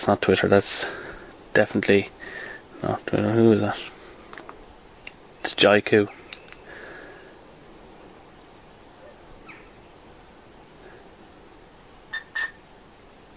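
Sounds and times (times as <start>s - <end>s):
speech: 0.0s - 1.0s, 1.6s - 4.0s, 5.4s - 6.2s
steady hiss: 0.0s - 13.3s
mobile phone beeping for low battery: 12.1s - 12.6s.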